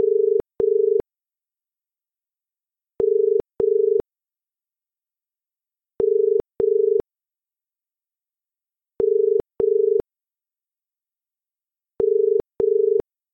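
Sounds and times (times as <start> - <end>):
Australian telephone ringing tone: 0.0 - 1.0, 3.0 - 4.0, 6.0 - 7.0, 9.0 - 10.0, 12.0 - 13.0.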